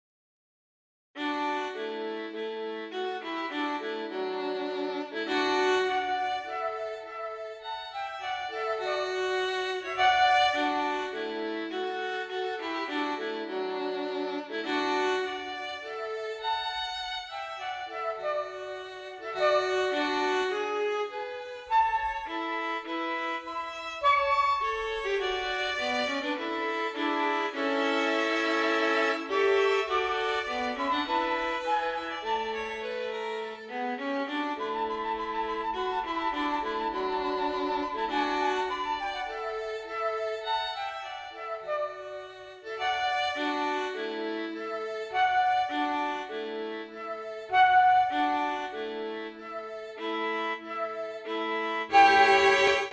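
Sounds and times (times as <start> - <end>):
flute: 1.2 - 52.9
violin: 1.2 - 52.9.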